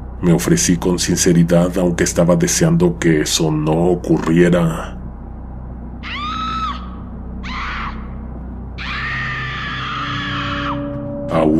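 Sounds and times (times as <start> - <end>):
steady low rumble: 0.0 - 9.8, 10.6 - 11.5
speech: 0.2 - 5.0, 11.4 - 11.5
woman screaming: 6.0 - 8.2, 8.8 - 10.9.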